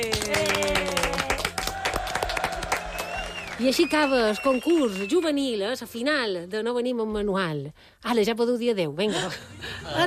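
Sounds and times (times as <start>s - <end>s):
loud applause at the end of a youth contest final: 0.0s - 5.3s
speech: 3.6s - 10.0s.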